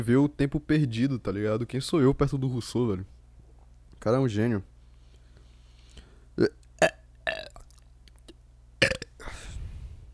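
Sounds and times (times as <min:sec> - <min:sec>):
speech: 0:00.0 - 0:03.2, 0:04.0 - 0:04.7, 0:06.4 - 0:07.0
person burping loudly: 0:06.4 - 0:07.8, 0:08.8 - 0:09.4.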